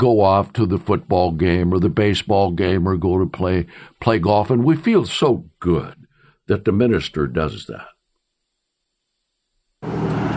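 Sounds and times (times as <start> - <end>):
speech: 0.0 - 7.9
cars driving past on a busy road beside a church: 9.8 - 10.3.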